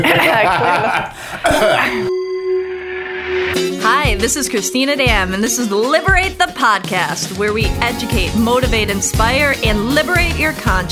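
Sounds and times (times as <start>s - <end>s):
laughter: 0.0s - 2.1s
speech: 0.0s - 2.2s, 3.3s - 10.8s
throat clearing: 1.4s - 2.0s.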